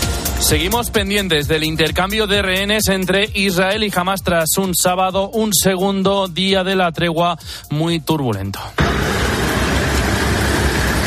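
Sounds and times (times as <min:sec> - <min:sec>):
speech: 0:00.4 - 0:09.2
heavy trucks rumbling at a border crossing: 0:08.8 - 0:11.0.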